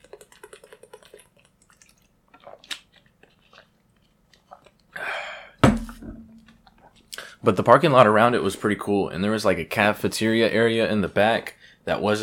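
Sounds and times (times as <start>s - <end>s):
person sipping water: 0.0s - 5.2s
container set down with a sharp knock: 5.6s - 6.4s
speech: 7.4s - 12.2s.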